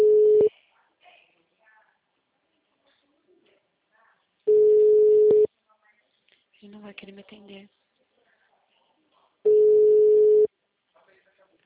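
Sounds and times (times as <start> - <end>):
telephone ringing tone on an outgoing call: 0.0 - 0.5, 4.5 - 5.5, 9.5 - 10.5
speech: 6.9 - 7.8.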